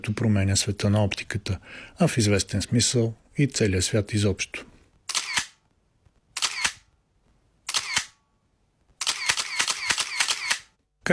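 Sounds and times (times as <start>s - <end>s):
speech: 0.0s - 4.7s
camera shutter clicking in rapid bursts: 5.1s - 5.6s, 6.4s - 6.9s, 7.7s - 8.2s, 9.0s - 10.8s.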